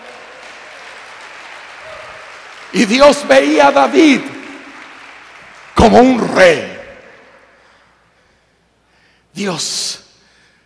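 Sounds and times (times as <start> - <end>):
church congregation applauding: 0.0 - 7.7
speech: 2.7 - 4.4, 5.8 - 6.7, 9.4 - 10.0.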